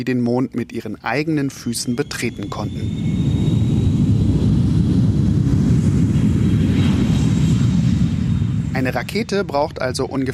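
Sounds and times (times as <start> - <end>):
speech: 0.0 - 3.3, 8.8 - 10.3
passenger airplane flying: 1.5 - 10.3.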